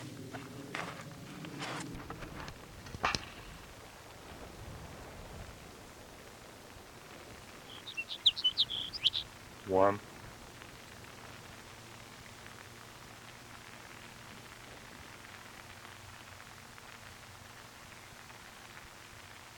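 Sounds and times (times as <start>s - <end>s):
rustling and handling noise: 0.0s - 3.7s
soft hiss: 0.0s - 19.5s
sage sparrow singing: 7.6s - 9.3s
speech: 9.7s - 10.1s.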